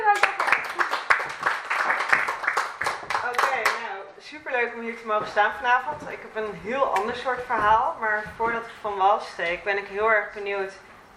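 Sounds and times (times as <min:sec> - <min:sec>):
room full of people clapping: 0:00.0 - 0:04.0
speech: 0:04.9 - 0:10.9.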